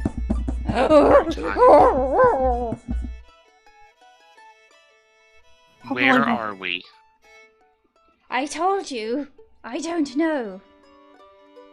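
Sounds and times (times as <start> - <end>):
speech: 0.7 - 2.9, 5.9 - 7.0, 8.3 - 10.7
dog whining and whimpering: 1.0 - 2.8.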